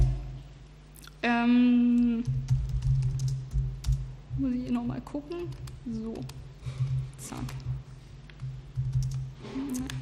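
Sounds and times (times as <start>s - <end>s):
low electrical hum: 0.0s - 10.0s
speech: 1.2s - 2.4s, 4.8s - 6.4s, 7.2s - 7.7s
keystrokes on a computer keyboard: 1.9s - 4.1s, 5.3s - 6.4s, 8.3s - 10.0s.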